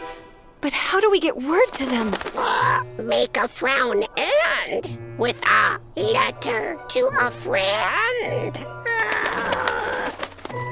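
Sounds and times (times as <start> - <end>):
speech: 0.6 - 8.7
bird cooing: 8.9 - 10.4.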